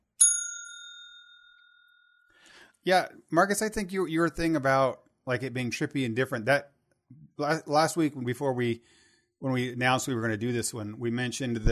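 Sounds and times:
spoiler bell ding: 0.0s - 2.3s
speech: 2.8s - 11.7s.

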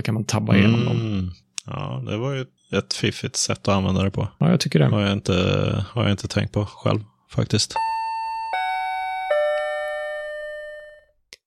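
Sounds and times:
speech: 0.0s - 8.0s
elevator arrival chime: 7.8s - 11.0s.

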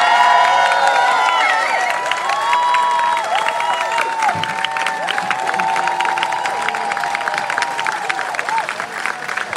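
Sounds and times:
large crowd applauding loudly: 0.0s - 9.5s
large crowd cheering: 0.0s - 9.5s
crowd whistling: 1.3s - 2.0s.

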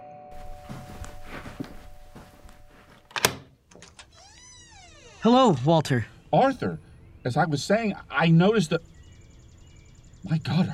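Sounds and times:
soft footsteps: 0.3s - 3.2s
front door latch click: 3.1s - 4.2s
speech: 5.2s - 8.9s, 10.2s - 10.7s.

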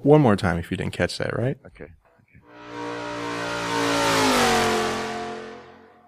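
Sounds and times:
speech: 0.0s - 2.0s
V8 engine with loud exhaust pipes revving hard: 2.5s - 6.0s.

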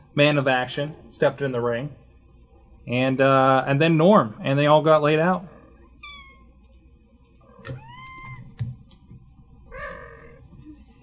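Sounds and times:
speech: 0.2s - 2.0s, 2.8s - 5.5s
angry cat yowling: 9.7s - 10.5s.

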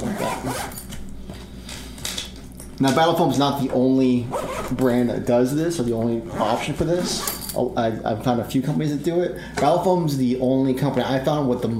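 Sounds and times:
zipper pulled closed around a folded-up foam carrying case for miniatures: 0.0s - 0.8s, 4.3s - 4.8s
speech: 2.8s - 11.7s.

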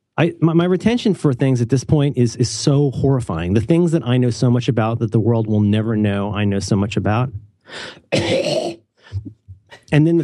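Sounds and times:
speech: 0.2s - 8.6s, 9.2s - 10.2s
loud throat clearing: 8.1s - 9.9s.

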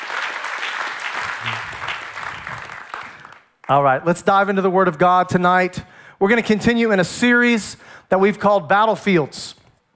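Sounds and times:
audience applauding: 0.0s - 3.6s
speech: 3.7s - 9.6s.

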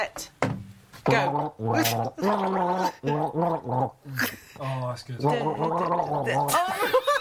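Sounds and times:
speech: 0.0s - 0.4s, 1.0s - 7.1s
person gargling water while humming a song melody: 1.1s - 4.4s, 5.2s - 6.8s.

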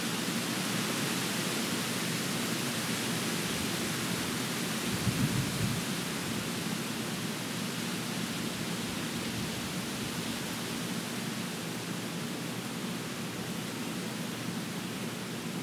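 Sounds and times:
warm wind rushing through trees: 0.1s - 15.5s.

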